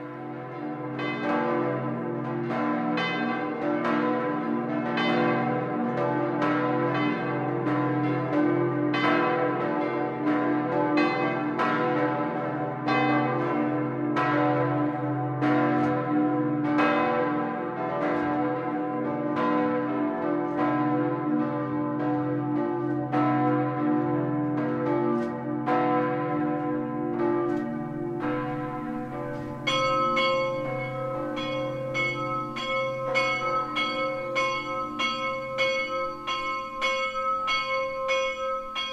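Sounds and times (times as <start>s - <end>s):
five 17th-century church bells pealing at a pilgrimage church in Lower Bavaria: 0.0s - 38.9s.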